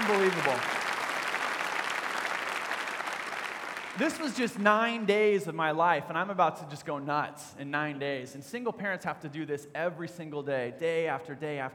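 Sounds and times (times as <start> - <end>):
audience applause for single parents at an event: 0.0 - 5.1
speech: 0.1 - 0.9, 4.0 - 11.7.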